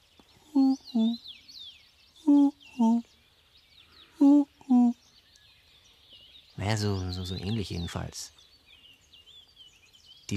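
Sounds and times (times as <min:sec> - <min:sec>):
bird chirps: 0:00.0 - 0:10.3
owl hooting: 0:00.4 - 0:01.2, 0:04.0 - 0:05.0
speech: 0:01.0 - 0:01.2, 0:06.7 - 0:08.4.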